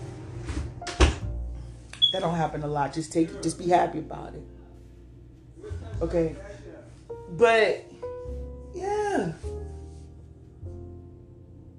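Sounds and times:
door swinging and shutting with a solid thump: 0.4s - 1.2s
speech: 2.1s - 4.6s, 6.0s - 6.5s, 7.3s - 9.5s.

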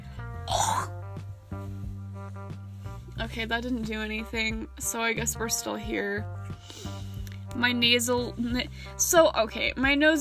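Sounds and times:
person with phlegm clearing throat: 0.5s - 0.9s
speech: 3.2s - 6.4s, 7.6s - 10.1s.

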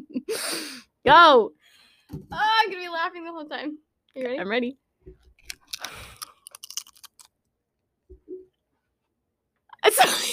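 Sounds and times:
speech: 1.0s - 4.8s, 9.8s - 10.3s
crunching of food close to the microphone: 5.4s - 7.4s.

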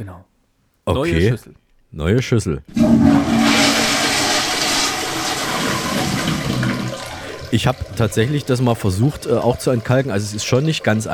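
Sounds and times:
speech: 0.0s - 3.3s, 7.5s - 11.1s
toilet flushing: 2.7s - 11.1s.

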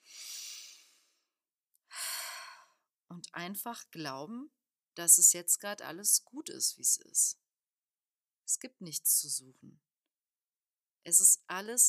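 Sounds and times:
deep breath in and out: 0.0s - 1.2s, 1.9s - 2.8s
speech: 3.1s - 7.4s, 8.5s - 9.9s, 11.0s - 11.8s.

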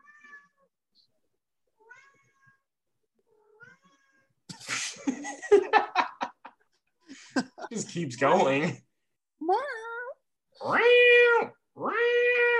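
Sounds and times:
cat meowing: 0.0s - 0.7s, 1.8s - 2.7s, 3.3s - 4.4s, 9.8s - 12.5s
loud noisy burst of human laughter: 4.5s - 8.7s
speech: 7.7s - 8.8s.

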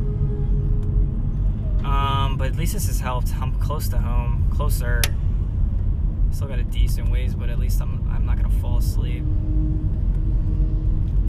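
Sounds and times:
car cabin engine and road drone while driving: 0.0s - 11.2s
speech: 2.4s - 5.2s, 6.3s - 10.0s.

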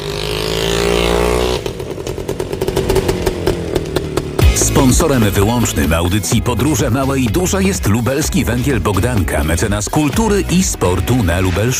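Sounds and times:
Polish-made WSK motorcycle engine revving in Świdnik Poland: 0.0s - 6.7s
speech: 4.9s - 11.7s.

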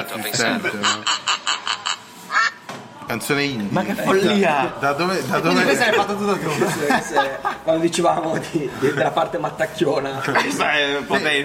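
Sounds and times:
speech: 0.0s - 1.7s, 3.1s - 11.4s
laughter: 0.2s - 2.0s, 5.4s - 11.4s
duck quacking: 0.6s - 2.6s.

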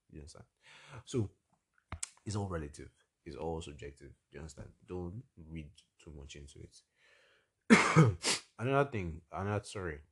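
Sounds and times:
speech: 0.1s - 1.4s, 2.3s - 6.9s, 7.7s - 10.1s
rough throat clearing: 7.7s - 8.2s
short cough bursts and hacking: 7.7s - 8.4s.

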